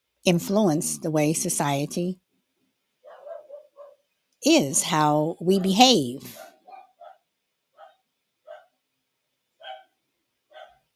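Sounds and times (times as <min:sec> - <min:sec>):
speech: 0:00.2 - 0:02.2, 0:04.4 - 0:06.5
dogs barking at someone at the door: 0:03.0 - 0:04.0, 0:06.3 - 0:08.8, 0:09.6 - 0:10.9.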